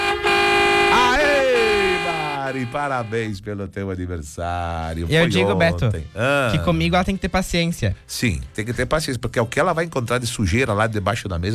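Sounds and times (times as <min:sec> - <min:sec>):
car horn honking: 0:00.0 - 0:03.4
speech: 0:02.5 - 0:11.5.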